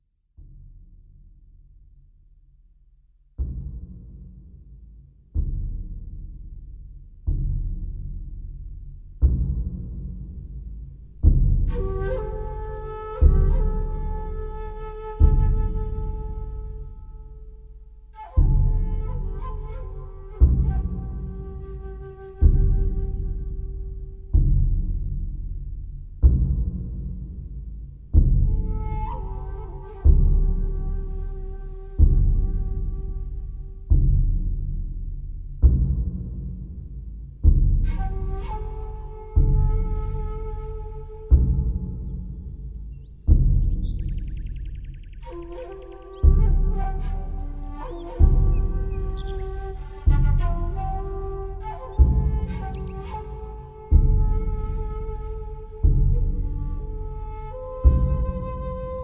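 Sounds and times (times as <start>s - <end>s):
taiko drum: 3.4s - 16.9s, 18.1s - 59.0s
shakuhachi flute: 11.2s - 25.9s, 28.1s - 36.4s, 37.4s - 59.0s.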